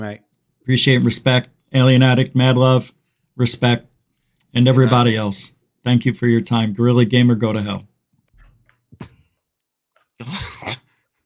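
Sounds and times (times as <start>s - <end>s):
speech: 0.0s - 3.9s, 4.5s - 7.9s, 10.2s - 10.8s
person sneezing: 10.2s - 11.0s.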